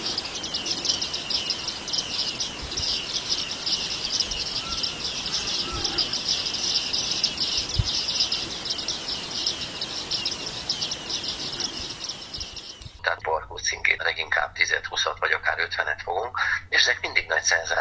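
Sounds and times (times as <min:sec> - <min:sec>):
bearded reedlings giving ringing bell-like flock calls: 0:00.0 - 0:13.0
soft outdoor hiss: 0:00.0 - 0:17.8.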